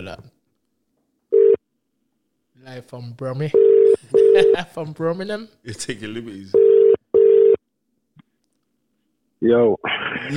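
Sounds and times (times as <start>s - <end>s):
speech: 0.0s - 0.3s, 2.6s - 6.7s, 9.4s - 10.3s
telephone ringback tone: 3.6s - 4.6s, 6.6s - 7.6s.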